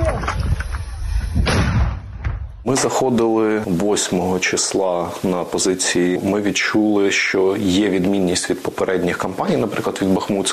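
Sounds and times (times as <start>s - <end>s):
rough outdoor noise: 0.0s - 10.5s
mortar round being fired: 1.4s - 2.4s
speech: 2.7s - 10.5s.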